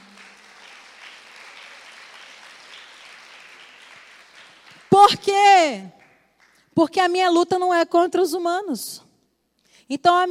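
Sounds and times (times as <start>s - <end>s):
indoor audience applauding: 0.0s - 5.2s
speech: 5.1s - 6.0s, 6.8s - 9.0s, 9.9s - 10.2s.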